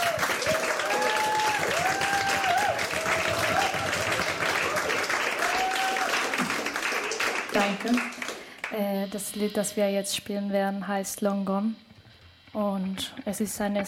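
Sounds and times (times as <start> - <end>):
faint whistles and cheers from crowd: 0.0 - 7.4
audience clapping: 0.0 - 8.9
speech: 7.6 - 11.9, 12.5 - 13.8.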